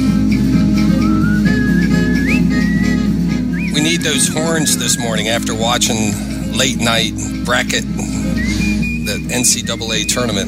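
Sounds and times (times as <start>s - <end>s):
steady low musical backing: 0.0s - 10.4s
man whistling a lilting tune: 0.9s - 5.6s, 8.1s - 10.4s
speech: 3.8s - 8.2s, 9.3s - 10.4s.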